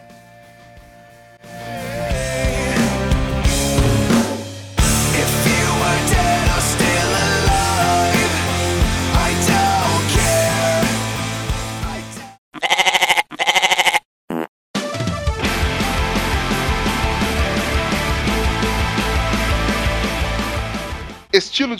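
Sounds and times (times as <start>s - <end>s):
dense music: 1.4s - 12.2s, 15.4s - 21.3s
goat bleating: 12.6s - 14.1s
speech: 21.6s - 21.7s.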